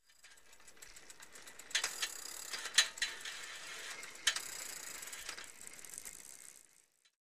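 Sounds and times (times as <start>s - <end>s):
ten-speed bicycle: 0.0s - 7.2s.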